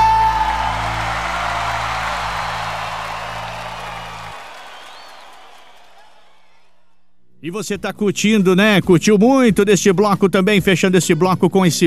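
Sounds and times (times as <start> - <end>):
large crowd applauding: 0.0 - 6.9
speech: 7.4 - 11.8.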